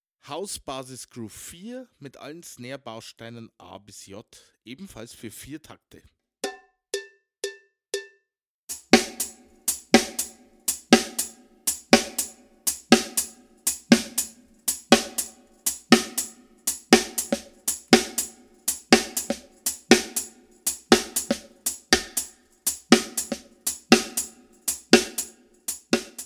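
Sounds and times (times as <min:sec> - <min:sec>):
house groove music: 0:08.7 - 0:26.2.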